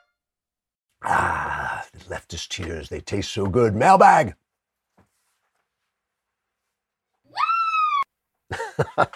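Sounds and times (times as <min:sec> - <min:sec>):
speech: 0:01.1 - 0:04.4, 0:08.9 - 0:09.1
shrill scream: 0:07.3 - 0:08.1
laughter: 0:08.5 - 0:09.1.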